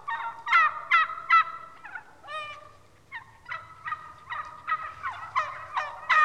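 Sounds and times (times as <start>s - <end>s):
wild turkey gobbling: 0.0s - 6.2s.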